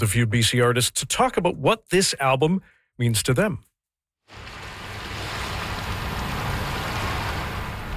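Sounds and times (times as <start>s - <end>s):
speech: 0.0s - 3.7s
ocean surf rolling in at a sandy beach: 4.3s - 7.9s.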